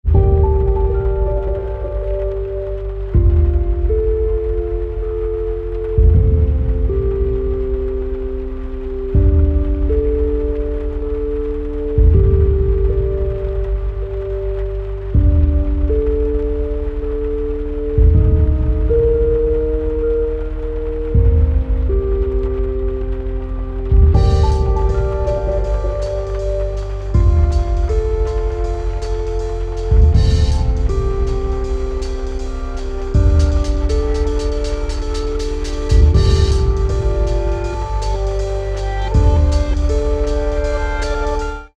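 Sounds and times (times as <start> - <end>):
Celtic harp: 0.0 - 41.7.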